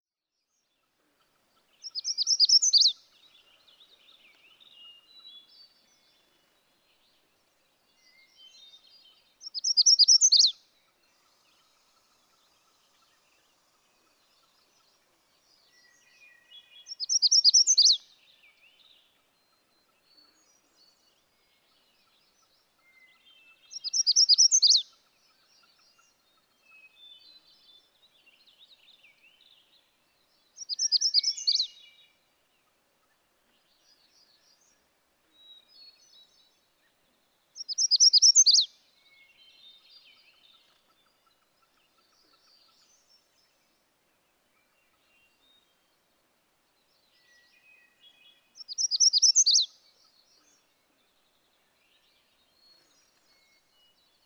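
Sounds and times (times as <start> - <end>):
Magnolia Warbler: 1.6 - 7.1, 7.9 - 11.8, 14.1 - 32.2, 37.6 - 43.8, 46.8 - 54.2.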